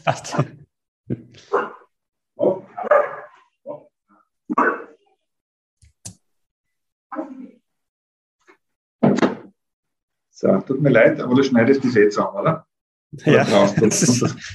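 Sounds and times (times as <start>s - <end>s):
laughter: 0.0s - 0.7s, 13.2s - 14.5s
speech: 0.0s - 1.8s, 10.4s - 14.5s
Australian Shepherd dog barking: 1.5s - 1.9s, 2.8s - 3.4s.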